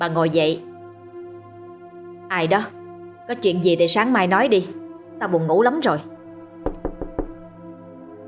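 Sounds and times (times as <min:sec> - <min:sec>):
speech: 0:00.0 - 0:00.7, 0:02.3 - 0:06.1
knocking on a bedroom door at night: 0:06.6 - 0:07.5.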